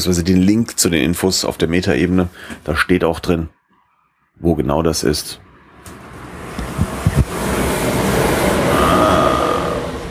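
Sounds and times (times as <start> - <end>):
speech: 0.0 - 3.6, 4.4 - 5.5
S-Bahn commuter train rumbling past: 5.9 - 10.1.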